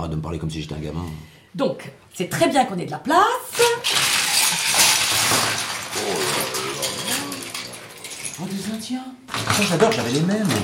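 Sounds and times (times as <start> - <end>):
speech: 0.0 - 4.0, 8.4 - 10.6
small hard plastic toy figures tumbling onto a table: 3.5 - 10.6.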